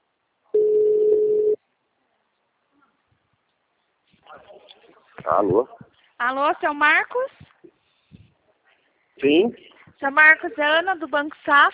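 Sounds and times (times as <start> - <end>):
telephone ringback tone on an outgoing call: 0.6 - 1.6
speech: 5.2 - 7.5, 9.2 - 11.7.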